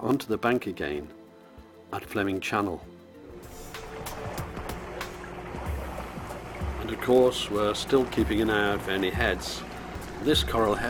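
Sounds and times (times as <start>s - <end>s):
speech: 0.1s - 1.2s, 1.9s - 3.0s, 6.9s - 10.8s
sailboat under sail slicing through water with continuous rushing wash: 3.4s - 10.8s
small waves splashing and slapping against the side of a sailboat: 3.6s - 9.0s.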